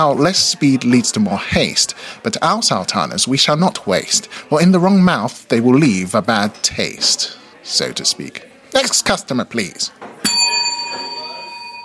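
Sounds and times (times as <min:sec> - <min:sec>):
speech: 0:00.0 - 0:10.1
small metal bell struck: 0:10.2 - 0:11.8.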